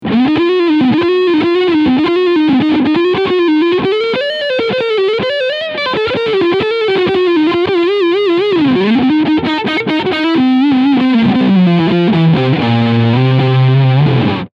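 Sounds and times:
ESP E II Eclipse electric guitar front humbucker with overdrive: 0:00.0 - 0:14.5.

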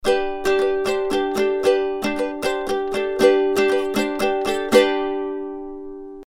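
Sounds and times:
ukulele: 0:00.0 - 0:06.2.

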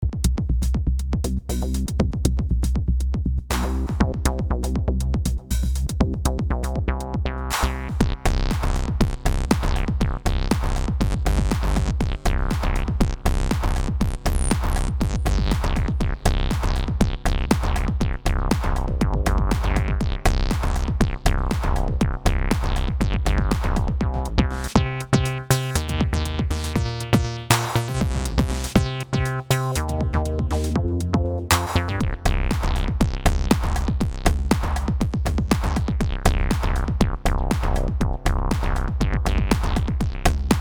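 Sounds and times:
distorted TB acid funk bass line with 909 drums: 0:00.0 - 0:40.6.

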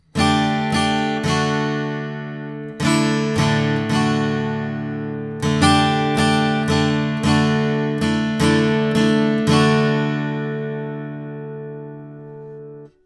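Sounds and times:
guitar recorded with a U87 microphone: 0:00.0 - 0:13.0.

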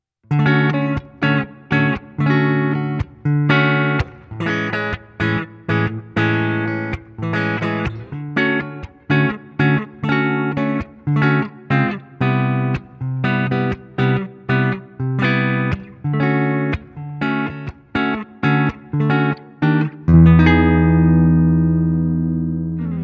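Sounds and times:
Cort X700 electric guitar clean tone on neck humbucker: 0:00.2 - 0:23.0.

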